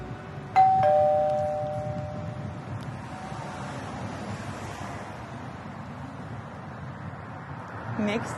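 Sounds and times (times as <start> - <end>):
two-tone doorbell chime at a residential front door in Amsterdam's Jordaan: 0.6 - 2.6.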